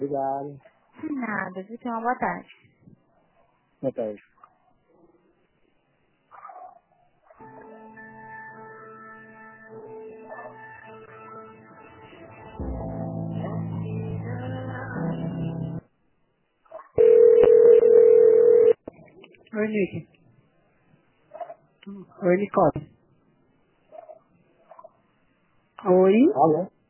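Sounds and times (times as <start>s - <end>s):
speech: 0.0s - 2.7s, 3.8s - 4.3s, 19.6s - 20.1s, 21.8s - 22.9s, 25.8s - 26.8s
telephone line tones during a call transfer: 17.0s - 18.8s.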